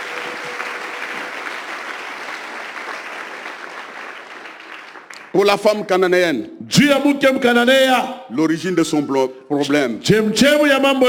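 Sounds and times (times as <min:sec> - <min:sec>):
congregation applauding during a church sermon: 0:00.0 - 0:05.5
speech: 0:05.3 - 0:11.0.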